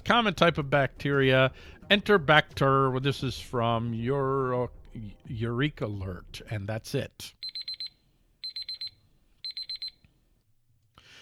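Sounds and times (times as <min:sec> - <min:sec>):
speech: 0:00.1 - 0:07.4
electronic alarm beeping high-pitched tones: 0:07.4 - 0:10.0.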